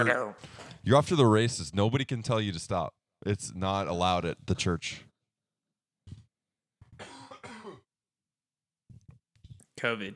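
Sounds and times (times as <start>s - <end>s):
speech: 0.0s - 5.1s, 9.8s - 10.1s
person coughing: 7.0s - 7.9s.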